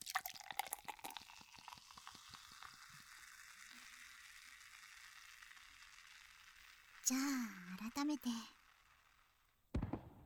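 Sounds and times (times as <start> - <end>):
speech: 7.1 - 8.6
firework bursting on a summer night: 9.7 - 10.2.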